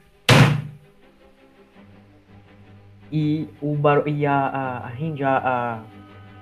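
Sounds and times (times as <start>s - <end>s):
door slamming shut: 0.3s - 0.8s
speech: 3.1s - 6.0s.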